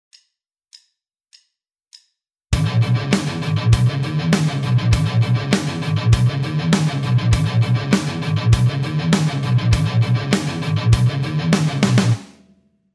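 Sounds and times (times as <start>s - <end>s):
eight-string guitar: 2.6s - 12.4s.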